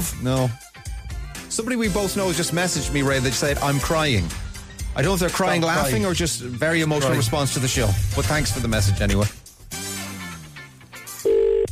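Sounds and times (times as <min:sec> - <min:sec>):
speech: 0:00.0 - 0:00.6, 0:01.6 - 0:04.4, 0:05.0 - 0:09.4
telephone ringing with a steady electronic tone: 0:11.2 - 0:11.7.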